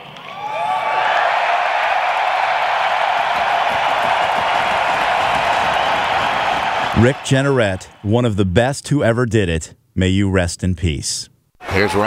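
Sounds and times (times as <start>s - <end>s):
big crowd roaring and cheering: 0.0s - 8.1s
speech: 7.0s - 12.0s.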